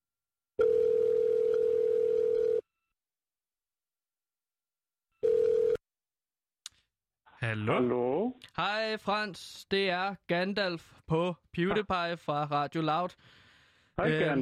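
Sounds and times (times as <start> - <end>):
telephone dial tone while placing a call: 0.6 - 2.7, 5.2 - 5.8
speech: 7.5 - 13.4, 14.0 - 14.4.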